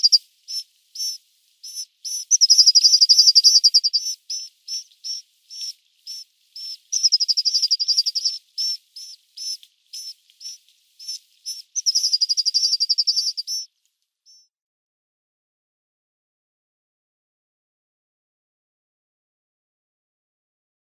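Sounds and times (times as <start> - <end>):
Sinai rosefinch call notes and trilled series: 0.0 - 13.7.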